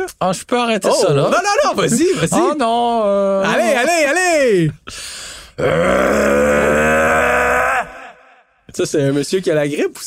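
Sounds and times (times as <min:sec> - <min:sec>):
speech: 0:00.1 - 0:06.7, 0:08.8 - 0:10.0
voice imitating the roar of a Mustang EcoBoost car engine: 0:05.6 - 0:07.9.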